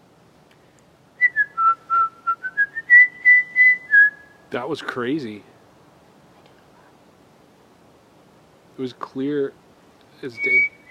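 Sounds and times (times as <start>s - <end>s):
clear tuneful whistle: 1.2s - 4.3s, 10.4s - 10.8s
speech: 4.5s - 5.5s, 8.8s - 9.6s, 10.2s - 10.8s.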